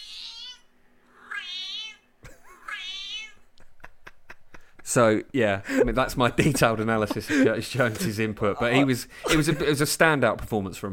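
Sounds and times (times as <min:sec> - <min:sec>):
cat meowing: 0:00.0 - 0:03.4
laughter: 0:03.6 - 0:05.0, 0:05.6 - 0:09.9
speech: 0:04.9 - 0:10.9.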